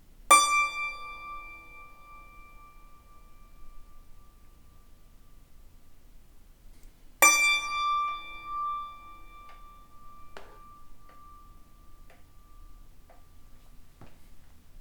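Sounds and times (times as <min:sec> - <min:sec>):
single yangqin note: 0:00.3 - 0:04.5, 0:07.2 - 0:13.4.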